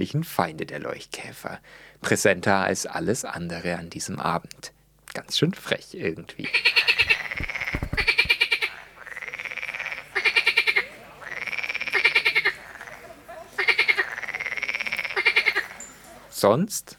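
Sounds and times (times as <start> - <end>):
speech: 0.0 - 6.8, 16.4 - 16.9
frogs croaking in a rattling chorus at a pond: 6.4 - 15.9.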